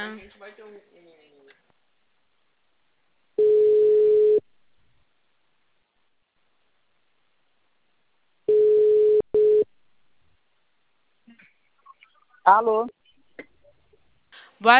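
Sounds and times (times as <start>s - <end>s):
speech: 0.1s - 1.4s, 12.5s - 13.0s, 14.6s - 14.7s
telephone ringing tone while placing a call: 3.4s - 4.4s, 8.5s - 9.7s.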